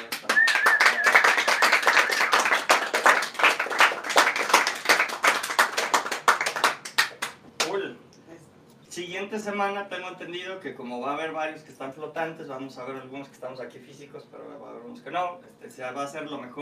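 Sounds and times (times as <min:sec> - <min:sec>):
small group applauding: 0:00.0 - 0:07.8
speech: 0:09.0 - 0:16.5.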